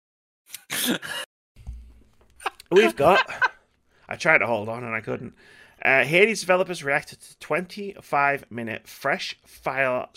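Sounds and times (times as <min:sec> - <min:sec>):
harsh rough coughing: 0:00.7 - 0:01.3
laughter: 0:02.4 - 0:03.6
speech: 0:02.7 - 0:03.5, 0:04.1 - 0:10.1.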